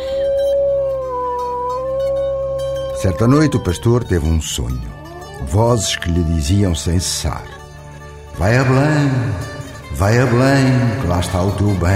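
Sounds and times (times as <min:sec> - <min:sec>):
long sustained wolf howl: 0:00.0 - 0:07.6
speech: 0:03.0 - 0:07.6, 0:08.4 - 0:11.9.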